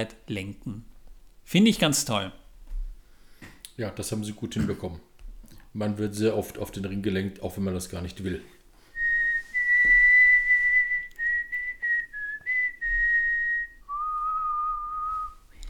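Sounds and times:
speech: 0.0 - 0.9, 1.5 - 2.4, 3.8 - 5.1, 5.7 - 8.6
person whistling a melody: 9.0 - 15.6.

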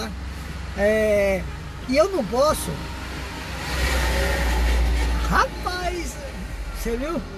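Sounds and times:
broad roar of road noise: 0.0 - 7.3
speech: 0.8 - 2.9, 5.3 - 7.3
heavy truck engine rumbling past: 1.6 - 7.3.

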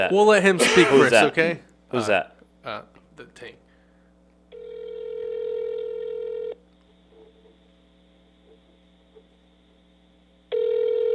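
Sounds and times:
speech: 0.0 - 3.6
electronic phone ringback tone: 4.6 - 6.6, 10.5 - 11.1.

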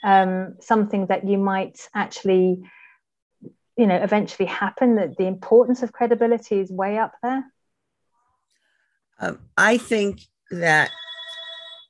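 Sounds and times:
speech: 0.0 - 2.8, 3.4 - 7.5, 9.2 - 11.0
telephone ringing with electronic tone: 10.8 - 11.8.

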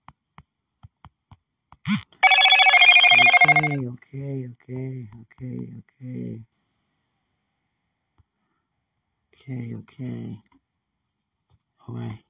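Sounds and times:
phone ringing with a buzzy electronic trill: 2.2 - 3.8
speech: 3.6 - 6.5, 9.4 - 10.6, 11.9 - 12.2.

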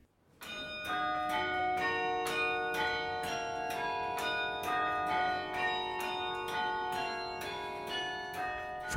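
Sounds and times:
carillon bells playing a melody, muffled from inside a room: 0.4 - 8.9.

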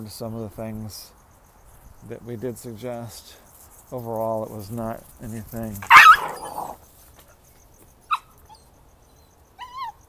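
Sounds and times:
speech: 0.0 - 1.2, 2.0 - 6.1
male puppy barking: 5.8 - 6.8
male puppy yelping: 5.8 - 6.8, 9.6 - 10.0.

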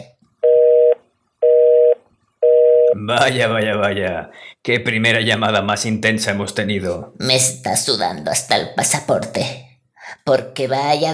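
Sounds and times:
telephone busy tone after a call is hung up: 0.4 - 3.0
speech: 3.1 - 11.1.

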